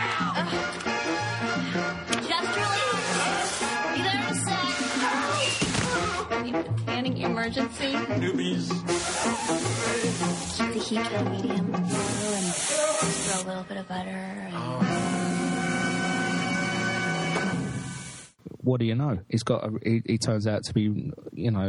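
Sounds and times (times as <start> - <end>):
music: 0.0 - 18.4
spray tan machine spraying at a tanning salon: 2.9 - 3.9, 8.9 - 10.8, 11.9 - 13.4
speech: 7.5 - 15.0, 18.6 - 21.6.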